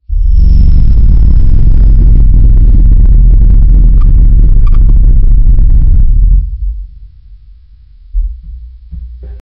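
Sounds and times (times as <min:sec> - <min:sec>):
low atmospheric rumble: 0:00.0 - 0:09.3.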